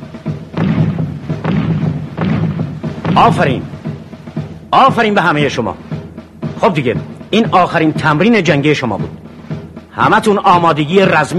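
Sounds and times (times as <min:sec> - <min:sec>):
hand grenades exploding at a target during military combat training: 0:00.6 - 0:03.8
speech: 0:03.2 - 0:03.8, 0:04.7 - 0:05.8, 0:06.6 - 0:09.2, 0:10.0 - 0:11.3.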